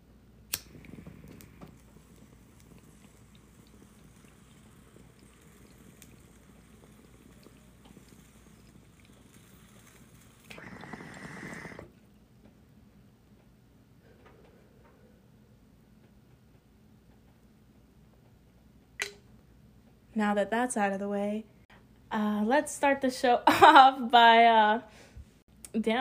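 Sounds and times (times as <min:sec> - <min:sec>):
lighter click: 0:00.5 - 0:04.3
bong bubbling during a smoking hit: 0:00.5 - 0:12.1
speech: 0:20.2 - 0:21.5, 0:22.2 - 0:25.1, 0:25.8 - 0:25.9.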